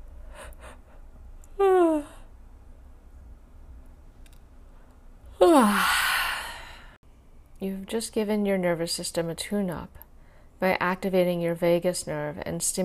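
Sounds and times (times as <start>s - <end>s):
person yawning: 5.4s - 6.8s
speech: 7.6s - 10.0s, 10.6s - 12.8s.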